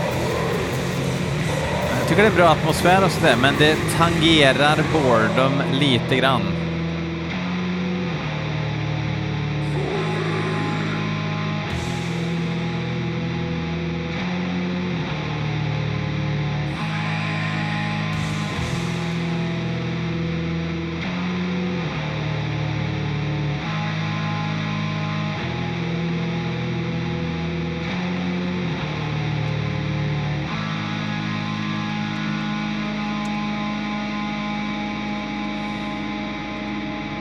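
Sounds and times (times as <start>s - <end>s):
drums with heavy reverb: 0.0s - 6.7s, 9.6s - 13.2s, 16.8s - 19.9s
dense distorted music: 0.0s - 37.1s
steady droning backing: 0.0s - 37.1s
speech: 2.1s - 6.6s.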